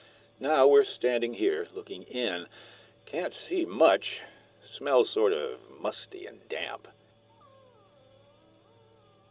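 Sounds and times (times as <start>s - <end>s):
low hum: 0.0s - 9.2s
speech: 0.4s - 7.0s
dog whimpering, refusing to enter: 7.3s - 9.2s.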